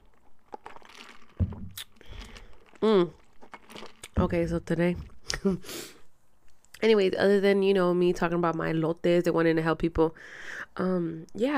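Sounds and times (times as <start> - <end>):
person sipping grape juice: 0.0 - 4.2
soft swallow: 1.1 - 4.2
wet mouth clicks: 1.4 - 2.0
speech: 2.8 - 3.2, 4.2 - 5.9, 6.8 - 11.5.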